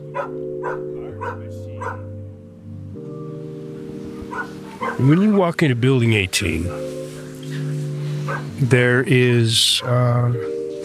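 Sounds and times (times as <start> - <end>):
program dogs barking in a housing unit: 0.0 - 2.2, 3.7 - 5.2, 6.7 - 9.0
speech: 0.2 - 2.0, 5.0 - 7.2, 8.3 - 10.6.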